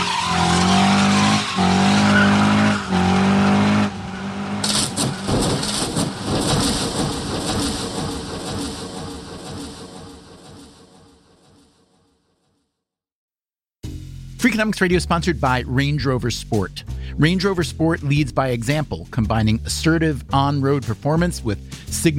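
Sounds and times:
race car tires squealing: 0:00.0 - 0:09.8
race car engines whining: 0:00.0 - 0:11.2
race cars crashing: 0:00.0 - 0:12.0
rumbling clatter of wreckage: 0:04.6 - 0:10.8
speech: 0:14.6 - 0:22.1.

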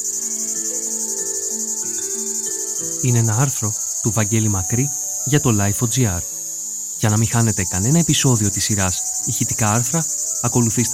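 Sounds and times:
cicadas chirring: 0:00.0 - 0:10.9
soft melodic music: 0:00.0 - 0:10.9
speech: 0:03.0 - 0:06.3, 0:07.0 - 0:10.9.

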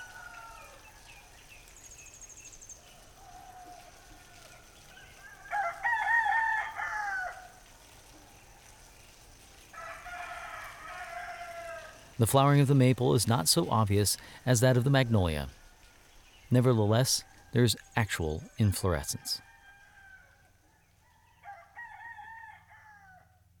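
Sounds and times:
rooster crowing: 0:00.0 - 0:01.3, 0:03.0 - 0:07.6, 0:09.7 - 0:12.2, 0:19.2 - 0:23.5
hissy outdoor background: 0:00.0 - 0:23.5
speech: 0:12.2 - 0:15.6, 0:16.5 - 0:19.5.

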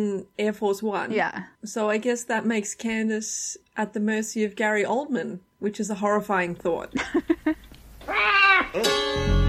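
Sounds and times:
speech: 0:00.0 - 0:07.6, 0:08.2 - 0:09.3
cat meowing and yowling: 0:08.0 - 0:08.8.

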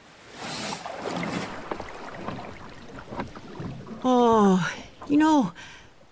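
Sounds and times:
boat moving through water: 0:00.2 - 0:06.1
knocks and creaks: 0:01.3 - 0:05.4
speech: 0:04.0 - 0:05.8.

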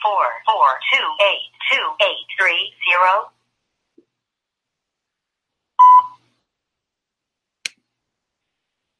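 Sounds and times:
speech: 0:00.0 - 0:03.4
voicemail recording beep: 0:05.8 - 0:06.2.

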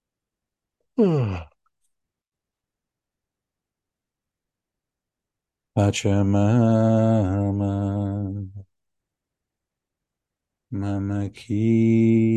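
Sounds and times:
speech: 0:01.0 - 0:01.5, 0:05.8 - 0:08.6, 0:10.7 - 0:12.3
person yawning with a falling pitch: 0:01.0 - 0:01.6.

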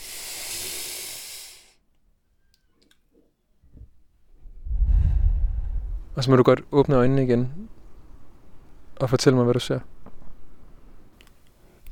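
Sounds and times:
person breathing deeply in and out with eyes closed: 0:00.0 - 0:01.8, 0:04.6 - 0:06.1
speech: 0:06.2 - 0:07.8, 0:09.0 - 0:10.0.

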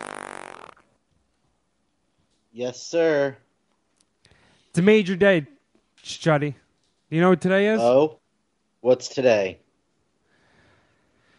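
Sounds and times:
buzzy fart: 0:00.0 - 0:01.0
speech: 0:02.6 - 0:03.4, 0:04.8 - 0:08.2, 0:08.8 - 0:09.6.

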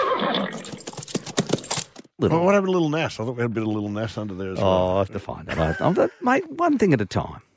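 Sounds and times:
horse neighing: 0:00.0 - 0:00.8
speech: 0:02.2 - 0:07.5.

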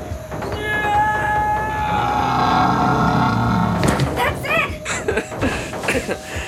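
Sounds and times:
person's angry roar-like scream: 0:00.6 - 0:03.8
laughter: 0:04.6 - 0:06.4.

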